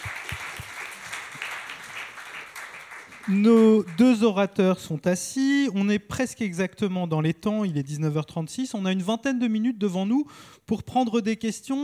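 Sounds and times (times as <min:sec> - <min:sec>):
audience applause: 0:00.0 - 0:04.1
speech: 0:03.3 - 0:11.8.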